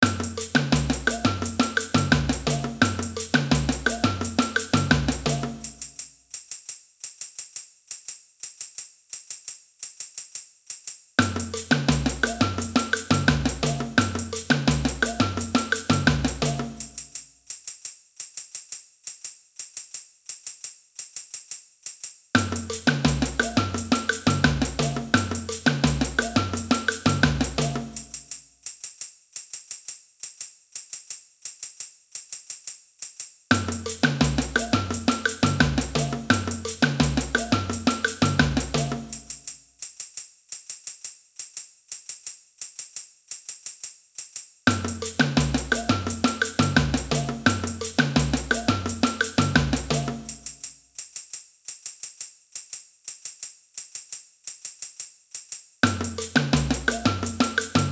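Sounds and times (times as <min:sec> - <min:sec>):
samba band playing: 0:00.0 - 0:05.9, 0:11.2 - 0:17.0, 0:22.4 - 0:28.2, 0:33.5 - 0:39.4, 0:44.7 - 0:50.6, 0:55.8 - 0:57.9.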